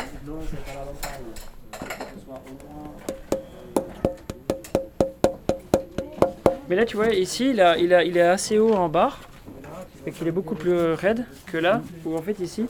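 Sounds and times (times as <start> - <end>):
speech: 0.2 - 4.2, 6.7 - 9.3, 10.0 - 12.6
crisp taps on a wooden instrument soundboard: 2.4 - 7.0.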